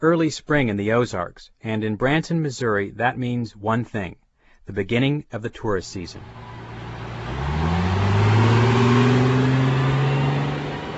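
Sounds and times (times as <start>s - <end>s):
speech: 0.0s - 6.6s
tour bus road noise on Highway 76: 6.0s - 10.9s
tour bus engine drone accelerating on Highway 76 in Branson, Missouri: 6.1s - 10.9s.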